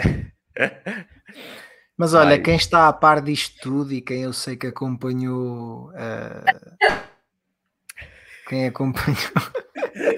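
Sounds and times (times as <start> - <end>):
laughter: 0.0 - 1.1, 9.2 - 10.1
speech: 0.0 - 1.1, 2.0 - 7.1, 8.0 - 10.1
person sneezing forcefully: 6.5 - 7.1.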